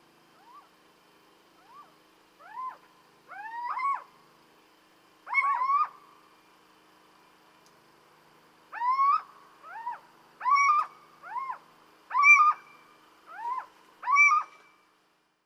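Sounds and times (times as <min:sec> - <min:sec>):
little owl giving loud mewing kiew calls: 0:00.4 - 0:00.8, 0:01.6 - 0:04.2, 0:05.2 - 0:06.2, 0:08.7 - 0:14.8.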